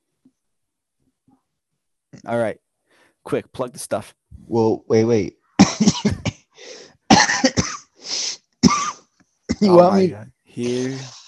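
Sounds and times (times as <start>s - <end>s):
speech: 2.2s - 2.6s, 3.2s - 6.3s, 9.6s - 11.2s
person coughing fit: 5.6s - 7.8s, 8.6s - 11.0s
raspy wheezing intakes of breath: 6.6s - 7.0s, 7.9s - 8.4s.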